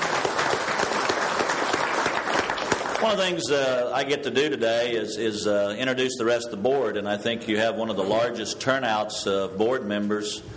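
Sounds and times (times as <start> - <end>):
audience applause at an Angus cattle business gathering: 0.0 - 3.3
speech: 3.0 - 10.5.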